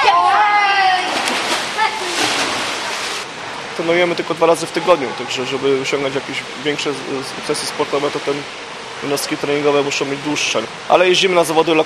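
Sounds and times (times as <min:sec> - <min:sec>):
children shouting and squealing at swimming training: 0:00.0 - 0:02.4
swimming pool water splashing as kids jump in: 0:00.0 - 0:11.8
speech: 0:03.8 - 0:11.8.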